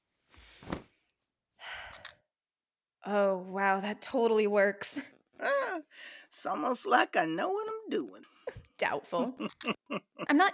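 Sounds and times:
speech: 0:03.1 - 0:10.5
person breathing slowly while holding a camera to shoot: 0:05.9 - 0:06.3
laughter: 0:08.5 - 0:10.5.

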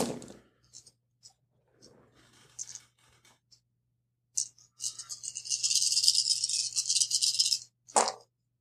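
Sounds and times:
dice shaken in a cup: 0:04.4 - 0:07.7
nine dice rattling for a physique roll: 0:04.4 - 0:08.2.

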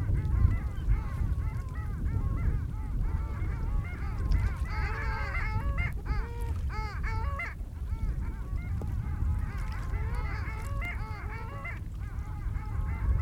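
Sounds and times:
constant low-pitched background rumble: 0:00.0 - 0:13.1
long-tailed duck flock yodeling calls at Barnegat Inlet New Jersey: 0:00.0 - 0:13.1.

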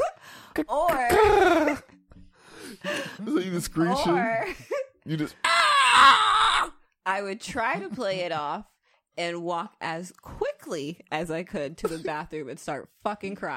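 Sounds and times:
speech: 0:00.6 - 0:01.6, 0:03.2 - 0:06.2, 0:07.2 - 0:13.5
voice imitating a pterodactyl scream with high-pitched shrieks: 0:05.4 - 0:06.8.

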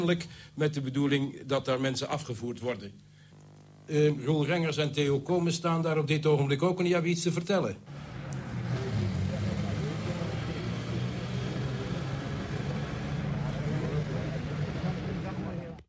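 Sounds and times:
speech: 0:00.0 - 0:03.1, 0:03.9 - 0:08.1
bus engine roaring while turning around: 0:07.9 - 0:15.8
indistinct voices: 0:07.9 - 0:15.8.

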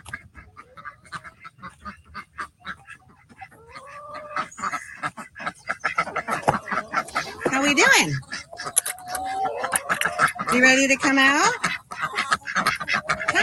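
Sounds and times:
flock of backyard birds squawking and honking as they are let out: 0:00.0 - 0:13.4
speech: 0:07.7 - 0:08.3, 0:10.5 - 0:11.6.

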